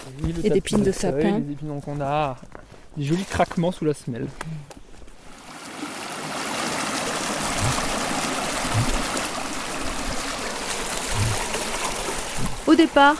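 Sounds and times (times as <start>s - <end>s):
speech: 0.1s - 4.8s, 12.7s - 13.1s
young Loire river flowing as a small stream near its source: 5.2s - 13.1s
soft low knocks: 7.5s - 8.0s, 8.6s - 9.2s, 11.1s - 11.6s.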